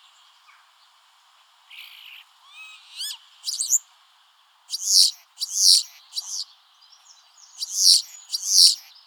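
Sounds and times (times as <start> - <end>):
common starling giving thin rising whistles and harsh rasping notes: 1.7 - 3.8, 4.7 - 6.5, 7.5 - 8.9.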